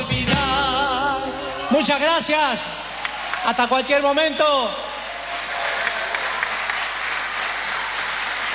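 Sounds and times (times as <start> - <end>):
crowd applauding: 0.4 - 8.5
speech: 1.8 - 2.8, 3.4 - 4.9.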